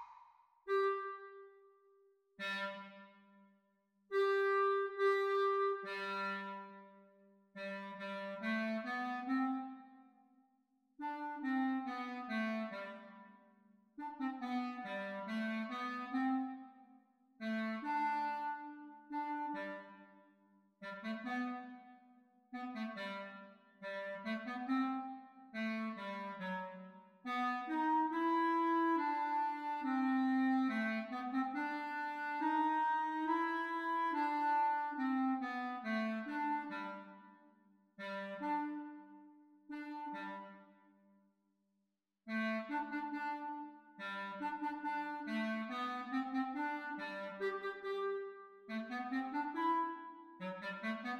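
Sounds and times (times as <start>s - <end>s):
clarinet duet practice: 0.7s - 1.8s, 2.4s - 3.3s, 4.1s - 10.1s, 11.0s - 13.4s, 14.0s - 20.3s, 20.8s - 37.4s, 38.0s - 41.0s, 42.3s - 51.1s.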